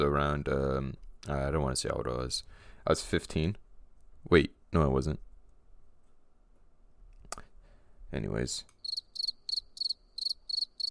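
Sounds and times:
speech: 0.0 - 3.6, 4.2 - 5.3, 8.1 - 8.7
crickets chirping: 8.8 - 10.8.

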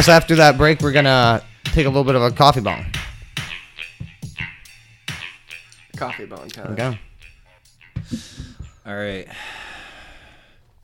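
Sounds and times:
speech: 0.0 - 3.1, 6.0 - 7.1, 8.0 - 9.7
heavy breathy exhale from a person preparing a coffee bong: 8.0 - 8.6, 9.3 - 10.6.

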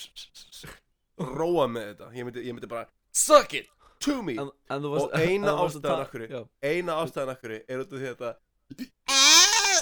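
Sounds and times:
speech: 1.2 - 9.0
person imitating a goat's nasal bleat: 9.1 - 9.7.

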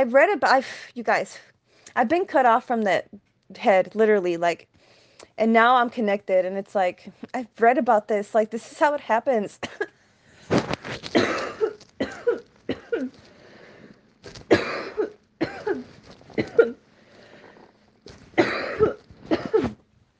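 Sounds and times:
speech: 0.0 - 4.7, 5.4 - 10.0, 10.6 - 11.6
person coughing: 11.1 - 13.2, 14.5 - 16.8, 18.4 - 19.8
wheezy inhales: 13.2 - 14.0, 16.9 - 17.8.

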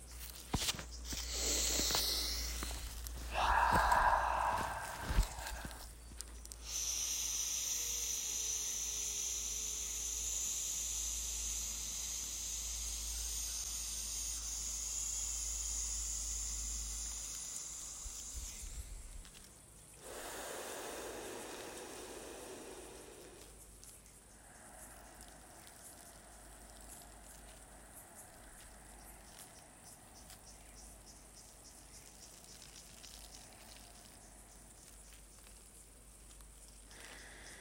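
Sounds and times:
steady hiss: 0.0 - 37.5
deep breathing exercise, inhaling and exhaling: 1.1 - 6.0, 20.0 - 23.7, 24.3 - 29.8, 36.9 - 37.5.

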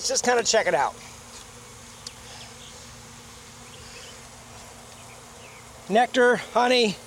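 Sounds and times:
speech: 0.0 - 1.2, 5.9 - 7.0
honeybees buzzing in an opened hive box during a hive inspection: 0.0 - 7.0.

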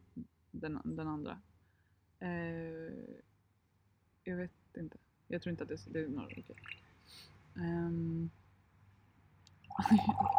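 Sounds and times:
speech: 0.6 - 1.5, 2.2 - 3.3, 4.2 - 8.4, 9.8 - 10.3
coffee being poured into a glass: 6.2 - 6.8, 9.7 - 10.3.

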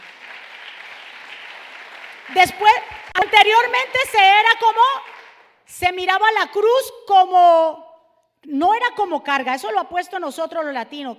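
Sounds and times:
audience applauding loudly: 0.0 - 5.6
speech: 2.3 - 5.1, 5.7 - 7.8, 8.4 - 11.1.

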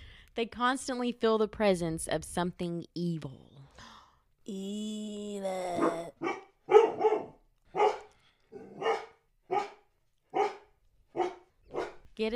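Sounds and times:
speech: 0.4 - 3.5, 4.5 - 6.4
dog barking: 5.8 - 12.1.

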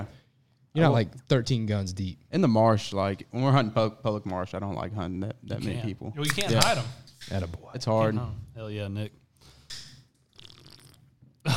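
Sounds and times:
speech: 0.8 - 9.5
loud slurp of a drink: 10.3 - 11.1.

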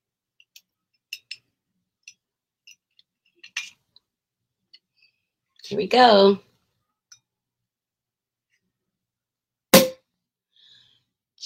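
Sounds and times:
speech: 5.7 - 6.5
cork popping out of a prosecco bottle: 9.8 - 10.0.

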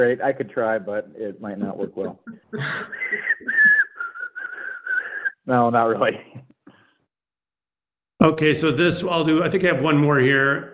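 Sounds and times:
speech: 0.0 - 3.6, 5.5 - 6.4, 8.2 - 10.7
person whistling an imitation of a sparrow song: 2.9 - 5.4.

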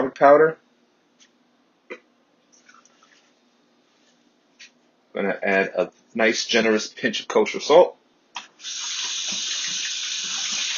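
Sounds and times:
speech: 0.2 - 0.6, 5.2 - 8.0, 8.6 - 9.4
water running from a kitchen tap as hands are rinsed: 8.6 - 10.7.

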